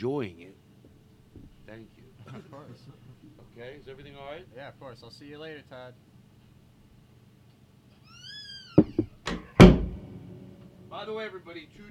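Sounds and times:
speech: 0.0 - 0.6, 1.7 - 6.1, 10.9 - 11.8
heavy door swinging shut with a thud: 8.8 - 10.2.

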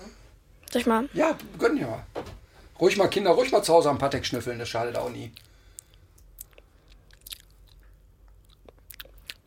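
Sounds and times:
low hum: 0.0 - 9.4
speech: 0.7 - 2.1, 2.8 - 5.5
wet chewing while tasting food: 4.9 - 9.4
lip smacks while tasting food: 5.3 - 9.4.

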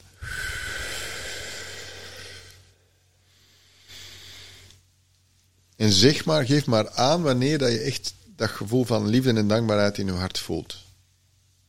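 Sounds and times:
slow breathy exhale during a breathing exercise: 0.0 - 4.8
speech: 5.8 - 10.8.

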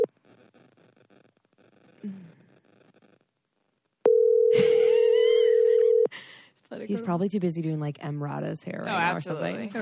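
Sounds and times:
speech: 2.0 - 2.3, 6.9 - 9.7
phone line ringback tone on the caller's end: 4.1 - 6.1.

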